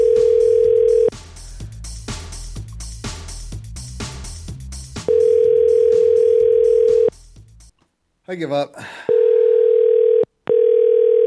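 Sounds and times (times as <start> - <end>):
ringback tones from an outgoing phone call: 0.0 - 1.1, 5.1 - 7.1, 9.1 - 11.2
quiet rhythmic music: 0.0 - 8.2
speech: 8.3 - 9.1.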